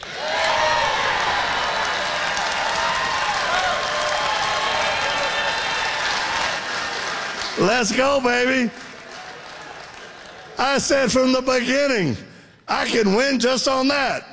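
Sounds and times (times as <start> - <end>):
many voices shouting, cheering and whooping: 0.0 - 7.4
large crowd clapping: 0.0 - 11.1
speech: 7.6 - 8.8, 10.6 - 14.3.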